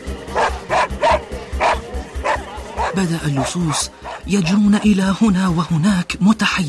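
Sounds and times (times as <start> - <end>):
dog yelping and barking: 0.4 - 4.9
speech: 3.0 - 6.6.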